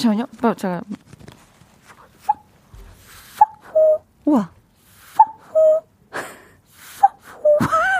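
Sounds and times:
speech: 0:00.0 - 0:01.0, 0:04.3 - 0:04.6
airy wheezy noises: 0:01.9 - 0:04.0, 0:04.8 - 0:05.9
voice imitating a cuckoo: 0:03.1 - 0:04.4, 0:05.0 - 0:05.9, 0:07.0 - 0:07.8.

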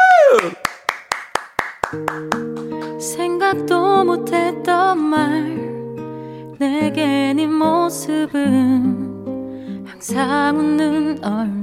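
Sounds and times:
host clapping hands: 0:00.1 - 0:03.2
musical accompaniment leading into a live song: 0:01.8 - 0:11.6
speech: 0:03.5 - 0:05.7, 0:06.6 - 0:09.1, 0:10.0 - 0:11.6.

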